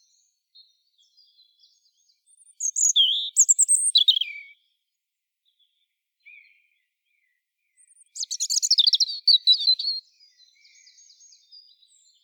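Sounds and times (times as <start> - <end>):
European robin singing: 0.0 - 4.7, 7.2 - 12.2.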